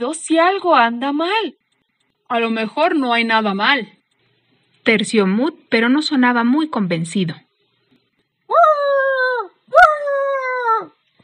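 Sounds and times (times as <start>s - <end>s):
speech: 0.0s - 1.6s, 2.3s - 4.0s, 4.8s - 7.4s
nervous trembling dog whimpering and howling: 8.5s - 11.0s.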